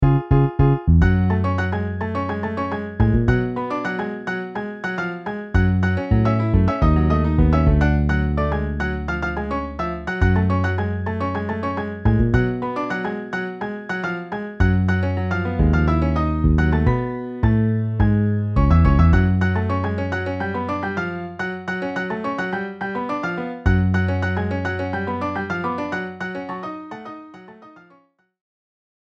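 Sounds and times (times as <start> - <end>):
MIDI bass: 0.0 - 3.6, 5.6 - 12.7, 14.6 - 20.4, 23.7 - 24.6
MIDI piano: 0.0 - 28.1.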